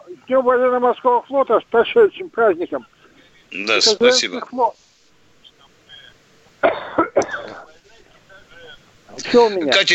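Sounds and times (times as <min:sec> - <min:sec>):
speech: 0:00.1 - 0:02.9, 0:03.5 - 0:04.8, 0:09.3 - 0:09.9
harsh coughing: 0:06.6 - 0:07.7.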